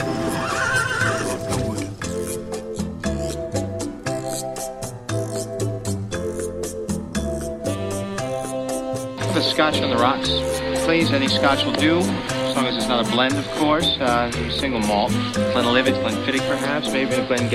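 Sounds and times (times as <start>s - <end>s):
horse whinnying: 0.0s - 2.6s
rhythmic clopping: 0.0s - 17.5s
sustained tonal musical backdrop: 0.0s - 17.5s
speech: 9.6s - 17.5s.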